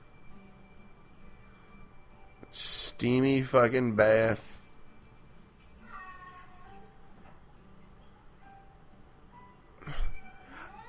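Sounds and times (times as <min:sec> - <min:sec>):
speech: 0:02.5 - 0:04.5
cat meowing: 0:05.8 - 0:06.8.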